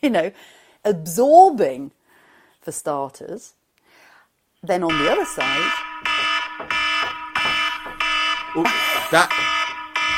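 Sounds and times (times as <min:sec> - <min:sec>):
speech: 0:00.0 - 0:02.0, 0:02.6 - 0:03.6, 0:04.6 - 0:05.9, 0:08.6 - 0:09.6
electronic alarm with harsh buzzing beeps signalling an upcoming quiz: 0:04.9 - 0:10.1.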